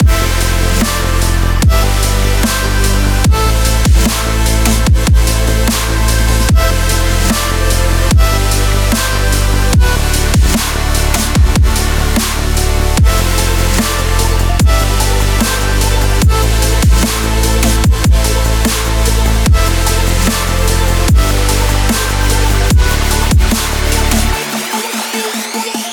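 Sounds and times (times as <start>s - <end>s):
emotional energy dubstep loop: 0.0s - 25.9s.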